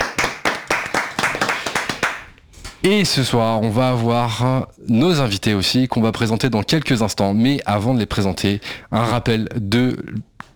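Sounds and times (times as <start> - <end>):
hands clapping in applause: 0.0 - 2.4
speech: 2.8 - 10.5.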